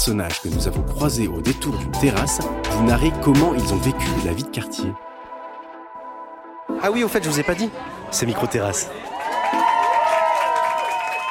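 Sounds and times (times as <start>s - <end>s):
speech: 0.0s - 5.1s, 6.8s - 9.2s
neighbours cheering and shouting in the evening: 7.2s - 11.3s
neighbours clapping: 8.7s - 11.3s.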